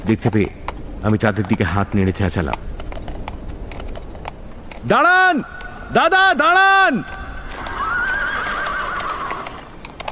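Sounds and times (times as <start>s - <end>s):
speech: 0.1s - 2.8s, 4.8s - 7.2s
clip-clop hoofbeats of a horse-drawn carriage: 0.4s - 6.1s, 6.9s - 10.1s
horse whinnying from a team pulling a carriage: 7.1s - 9.8s.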